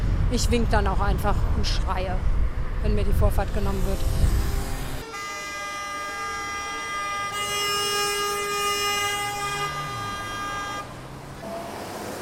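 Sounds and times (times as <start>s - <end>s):
low traffic rumble of vehicles in a large traffic jam: 0.0s - 12.2s
speech: 0.3s - 4.4s
ambulance siren in a large traffic jam: 5.0s - 11.6s.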